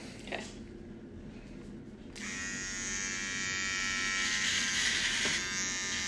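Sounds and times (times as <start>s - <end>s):
electric hair clippers buzzing during a man's haircut: 2.2s - 6.0s.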